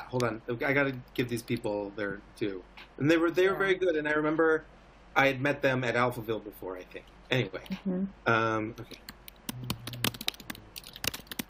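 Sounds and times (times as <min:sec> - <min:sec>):
speech: 0:00.1 - 0:09.7
furious typing on a computer keyboard: 0:08.9 - 0:11.4.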